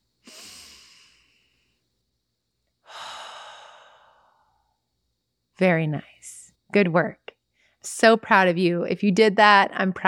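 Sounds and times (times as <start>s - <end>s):
long deep breaths during a guided breathing exercise: 0.2s - 2.0s, 2.8s - 4.8s
speech: 5.6s - 7.2s, 7.8s - 10.0s.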